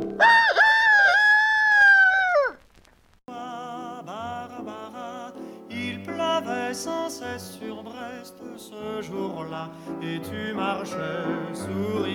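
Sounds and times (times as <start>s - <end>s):
rooster crowing: 0.2s - 2.6s
speech: 9.7s - 12.1s.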